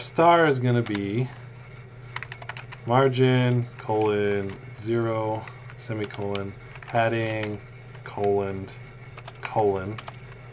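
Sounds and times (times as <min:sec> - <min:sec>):
speech: 0:00.0 - 0:01.5, 0:02.8 - 0:08.8, 0:09.5 - 0:10.1
keys clacking on a computer keyboard as CSS code is typed: 0:00.7 - 0:01.2, 0:02.1 - 0:02.8, 0:03.4 - 0:04.7, 0:05.3 - 0:08.5, 0:09.1 - 0:10.4.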